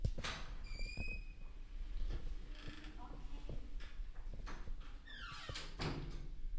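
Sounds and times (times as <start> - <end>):
door opening with clatter and creak: 0.2 - 6.4.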